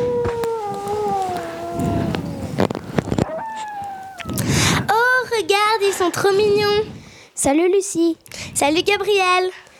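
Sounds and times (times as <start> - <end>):
several wolves howling together: 0.0 - 4.9
speech: 6.1 - 9.6.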